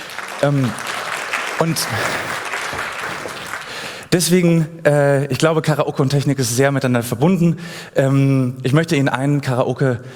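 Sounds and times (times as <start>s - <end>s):
audience applause: 0.0s - 4.1s
speech: 0.4s - 0.9s, 1.6s - 2.8s, 4.1s - 10.1s.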